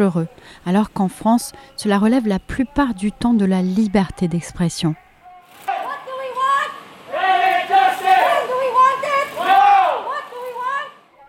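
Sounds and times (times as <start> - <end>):
speech: 0.0 - 5.1
crowd noise: 0.0 - 11.2
activists chanting at a climate protest: 7.0 - 10.7.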